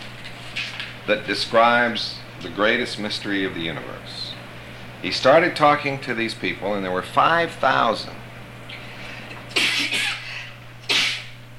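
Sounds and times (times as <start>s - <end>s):
faint steady hum: 0.0s - 11.5s
speech: 1.1s - 4.3s, 5.0s - 8.2s
person sneezing: 9.5s - 11.4s.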